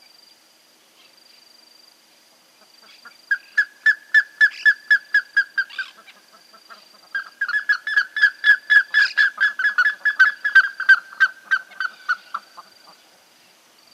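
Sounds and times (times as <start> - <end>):
Plumbeous ibis giving loud clear whistled notes and ringing calls: 2.8 - 12.8.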